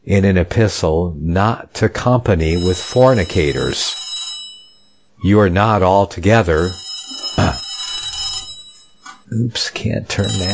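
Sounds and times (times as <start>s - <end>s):
speech: 0.1s - 4.0s, 5.2s - 6.8s, 7.4s - 7.6s, 9.3s - 10.5s
telephone ringing with a bright high electronic trill: 2.5s - 9.3s, 10.1s - 10.5s.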